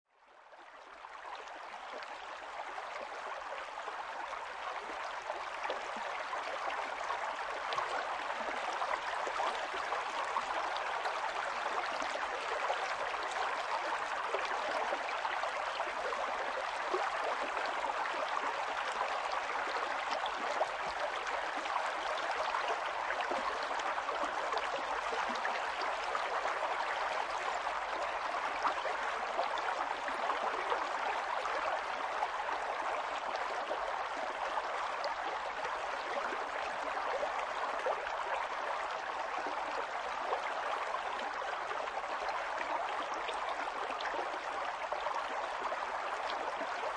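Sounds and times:
gentle rivers and streams flowing: 0:00.1 - 0:46.9.

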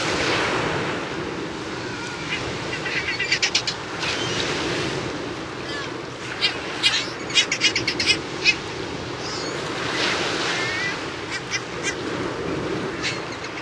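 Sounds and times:
steady rushing surf: 0:00.0 - 0:13.6
Heermann's gull calls: 0:01.7 - 0:04.5, 0:05.6 - 0:12.0, 0:12.9 - 0:13.6.

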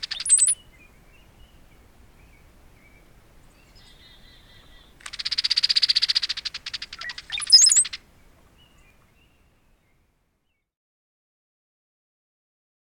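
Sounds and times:
brown-headed cowbird high gurgle-and-whistle phrase: 0:00.0 - 0:00.6, 0:05.0 - 0:08.0.

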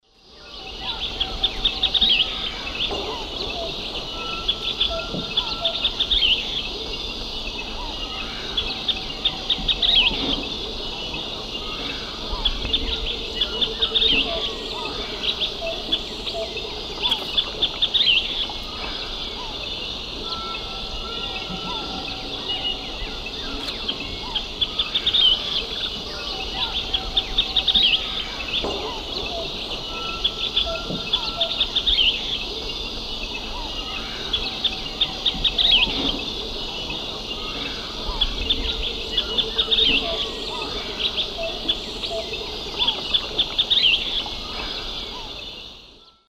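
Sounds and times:
Myiozetetes granadensis dawn song in South American Eastern Lowlands: 0:00.1 - 0:46.2.

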